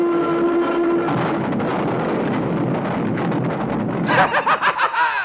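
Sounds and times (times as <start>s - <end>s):
crash: 0.2s - 4.9s
person laughing: 4.0s - 5.2s.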